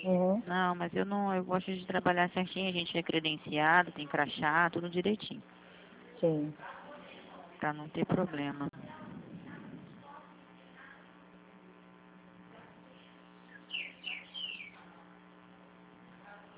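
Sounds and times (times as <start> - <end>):
steady electrical hum on a phone line: 0.0 - 16.5
speech: 0.5 - 5.6, 6.2 - 6.8, 7.6 - 9.0
small pet bird singing in short high chirps: 13.4 - 14.8.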